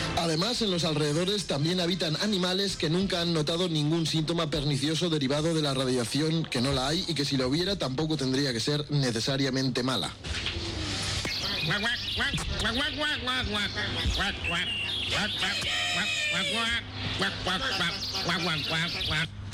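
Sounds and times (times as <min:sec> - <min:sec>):
speech: 0:00.2 - 0:10.5, 0:11.7 - 0:19.4
person imitating a duck quacking: 0:14.3 - 0:19.4.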